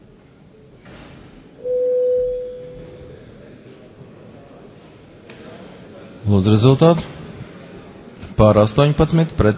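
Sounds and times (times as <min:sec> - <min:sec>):
parliament voting bell electronic signal tone: 0:01.6 - 0:03.2
speech: 0:06.3 - 0:07.1, 0:08.4 - 0:09.5.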